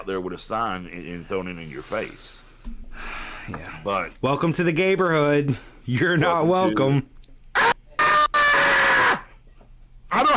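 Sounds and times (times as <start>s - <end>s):
speech: 0.0s - 7.1s
person screaming loudly and shrilly: 7.6s - 9.3s, 10.1s - 10.3s.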